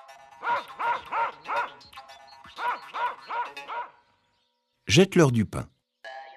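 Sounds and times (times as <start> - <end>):
speech: 0.4 - 2.0, 4.9 - 5.7
dogs barking: 0.4 - 4.0.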